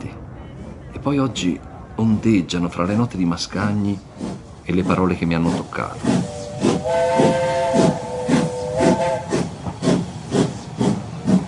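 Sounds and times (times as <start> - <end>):
speech: 1.0 - 6.3, 6.9 - 7.9
steam locomotive chuffing: 3.9 - 11.4
steam locomotive whistle with layered tones: 6.1 - 10.0.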